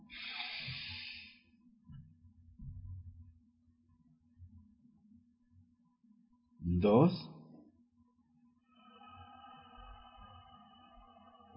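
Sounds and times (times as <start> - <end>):
deep breath taken to end a practice session: 0.0 - 1.4, 8.6 - 11.5
speech: 6.7 - 7.3.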